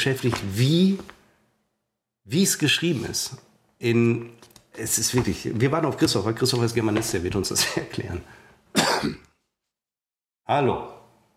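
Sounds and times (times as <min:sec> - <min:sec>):
speech: 0:00.0 - 0:01.2, 0:02.3 - 0:08.4, 0:09.0 - 0:09.3, 0:10.5 - 0:11.0
laughter: 0:07.5 - 0:08.1
single loud harsh cough: 0:08.7 - 0:09.4.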